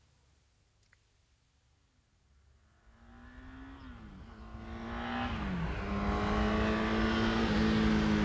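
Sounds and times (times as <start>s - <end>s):
car engine approaching along a road: 3.0s - 8.2s.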